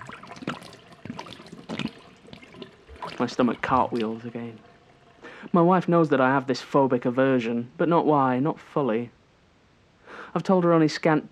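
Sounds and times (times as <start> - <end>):
thick milk glugging out of a glass bottle in a kitchen: 0.0 - 5.9
splashing trickle of milk: 0.0 - 7.2
speech: 3.2 - 4.7, 5.5 - 9.2, 10.3 - 11.3.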